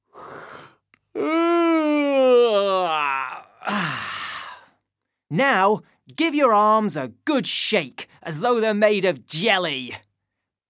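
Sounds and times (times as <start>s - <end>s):
big yawn with voiced groan: 0.1s - 4.8s
speech: 1.2s - 1.4s, 5.3s - 10.0s.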